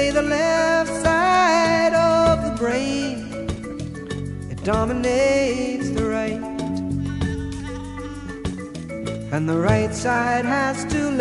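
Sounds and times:
marimbas playing in a dense musical backing: 0:00.0 - 0:11.1
speech: 0:04.7 - 0:06.5, 0:09.3 - 0:11.1
sheep-like bleating with a shaky wavering pitch: 0:07.1 - 0:08.6.

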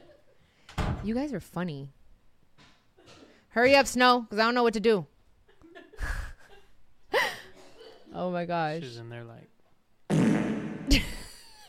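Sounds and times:
speech: 0:01.0 - 0:02.0, 0:03.6 - 0:05.1, 0:08.1 - 0:09.5, 0:10.9 - 0:11.2
fart: 0:10.1 - 0:10.9.

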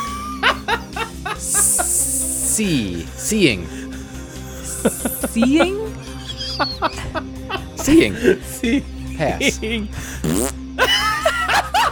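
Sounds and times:
laughter: 0:00.0 - 0:02.2, 0:03.8 - 0:10.0, 0:10.8 - 0:11.9
speech: 0:02.6 - 0:03.8, 0:04.8 - 0:11.0
person imitating a fart with their mouth: 0:10.2 - 0:10.6.

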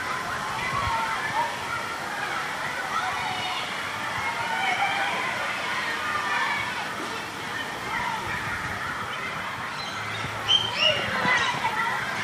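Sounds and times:
children playing and chattering: 0:00.0 - 0:12.2.

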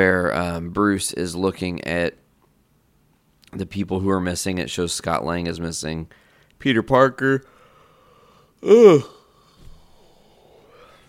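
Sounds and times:
speech: 0:00.0 - 0:02.2, 0:03.5 - 0:07.5, 0:08.6 - 0:09.2
drawn-out breathy yawn: 0:08.6 - 0:11.0.

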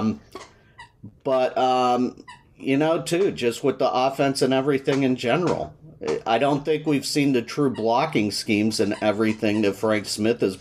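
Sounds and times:
speech: 0:00.0 - 0:00.5, 0:01.2 - 0:10.5
female dog chewing a squeaky toy: 0:02.2 - 0:02.7, 0:07.6 - 0:08.2, 0:08.8 - 0:10.2.

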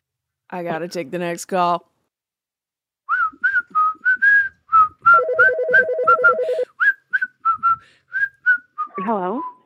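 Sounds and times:
speech: 0:00.5 - 0:01.9, 0:09.0 - 0:09.5
person whistling a lively melody: 0:03.1 - 0:09.6
steady electronic beeping tone: 0:05.1 - 0:06.6.

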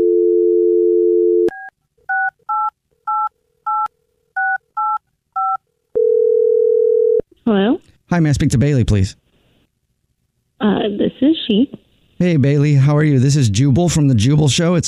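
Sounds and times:
phone dial tone: 0:00.0 - 0:01.6, 0:05.4 - 0:07.2
phone ringing tone on the line: 0:00.0 - 0:07.2
speech: 0:07.5 - 0:09.2, 0:11.2 - 0:14.8.

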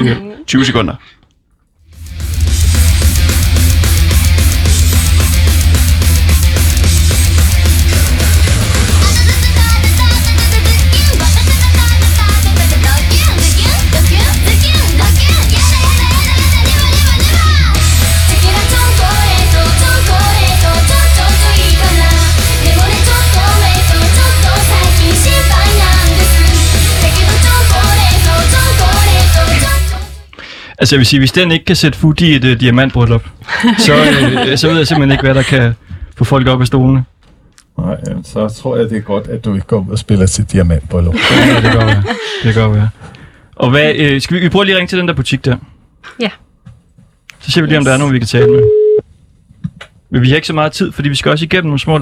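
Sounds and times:
speech: 0:00.0 - 0:01.2, 0:30.8 - 0:37.1, 0:37.8 - 0:46.4, 0:47.4 - 0:48.8, 0:50.1 - 0:52.0
Japanese idol metal song with heavy drums and distorted guitars: 0:01.9 - 0:30.3
laughter: 0:33.5 - 0:35.8, 0:41.1 - 0:42.9.

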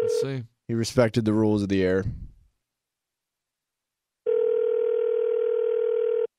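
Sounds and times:
speech: 0:00.2 - 0:02.3
electronic ringback tone of a telephone line calling a cell phone: 0:04.3 - 0:06.3.

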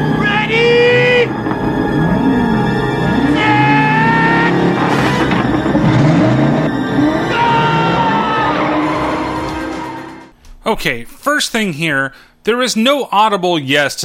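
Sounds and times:
car engine revving before a road race: 0:00.0 - 0:10.3
speech: 0:10.7 - 0:14.0.

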